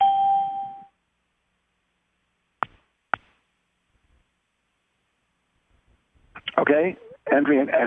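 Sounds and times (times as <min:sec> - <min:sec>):
conference call chime: 0:00.0 - 0:00.9
speech: 0:06.6 - 0:07.8.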